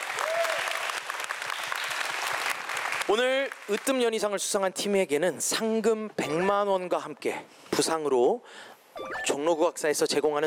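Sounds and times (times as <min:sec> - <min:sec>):
audience applause: 0:00.0 - 0:03.9
speech: 0:03.1 - 0:10.4.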